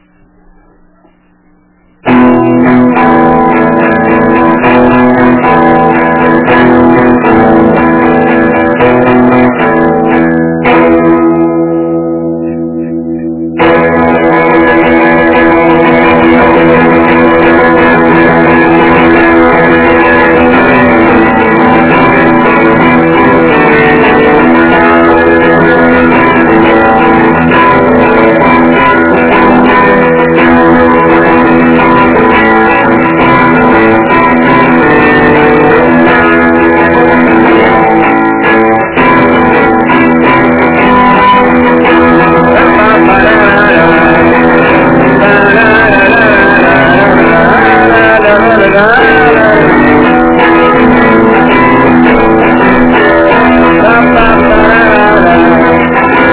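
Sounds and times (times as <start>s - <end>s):
guitar: 0.0s - 56.3s.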